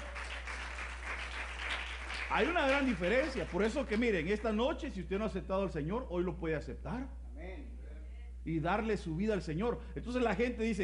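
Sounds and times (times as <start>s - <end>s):
audience at a church service applauding: 0.0s - 4.0s
speech: 2.3s - 7.8s, 8.4s - 10.8s.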